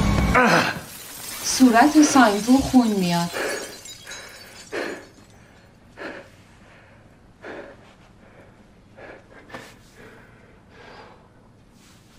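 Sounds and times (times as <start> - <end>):
glass shards shattering from explosion: 0.2 - 5.7
speech: 1.6 - 3.5.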